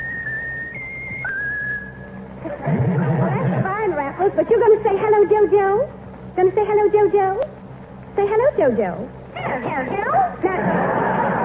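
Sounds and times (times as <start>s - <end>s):
pet bird whistling a tune: 0.0s - 2.2s
low hum: 0.0s - 11.4s
laughter: 2.4s - 3.9s, 9.4s - 11.4s
speech: 4.2s - 7.5s, 8.2s - 11.1s.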